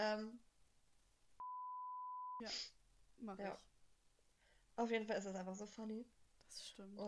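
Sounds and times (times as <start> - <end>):
speech: 0.0 - 0.5, 2.4 - 3.7, 4.8 - 7.0
censor beep: 1.4 - 2.4.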